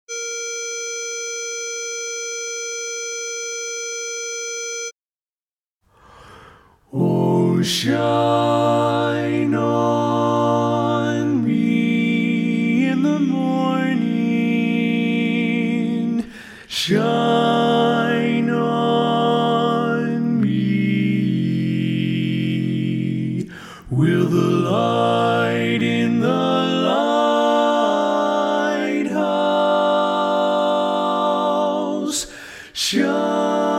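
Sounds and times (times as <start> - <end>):
barbershop lead vocal learning track: 6.9 - 33.7.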